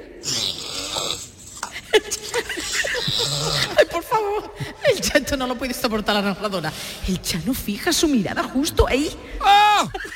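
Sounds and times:
drawn-out raspy rattling snore with a snort: 0.2 - 1.4
laughter: 1.8 - 4.0
speech: 2.8 - 10.1.

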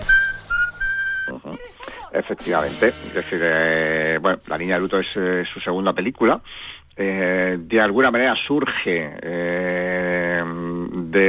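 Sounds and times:
person whistling a short melody: 0.0 - 1.4
speech: 2.2 - 11.2.

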